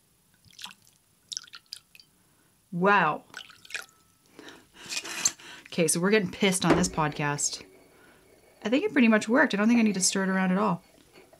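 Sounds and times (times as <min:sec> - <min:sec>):
alcohol splashing into a container holding edible shimmer powder: 0:00.4 - 0:02.0, 0:03.3 - 0:03.9
speech: 0:02.7 - 0:03.4, 0:05.8 - 0:07.7, 0:08.6 - 0:10.9.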